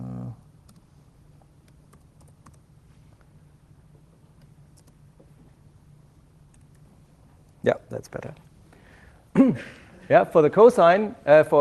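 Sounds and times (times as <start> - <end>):
low hum: 0.0 - 11.5
typing on a computer keyboard: 1.9 - 2.6, 4.7 - 5.0
speech: 7.6 - 8.5, 9.4 - 11.5.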